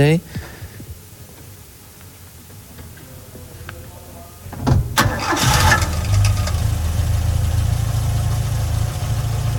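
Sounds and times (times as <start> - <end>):
speech: 0.0 - 0.5
vintage car engine cranking and idling: 4.6 - 9.5.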